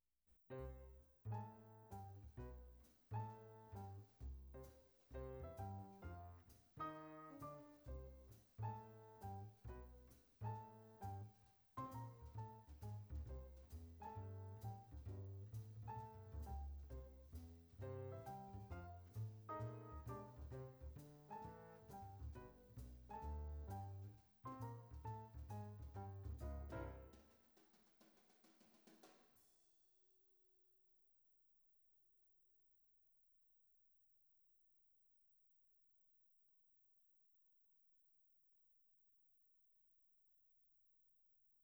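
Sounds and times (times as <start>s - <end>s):
music: 0.6s - 27.4s.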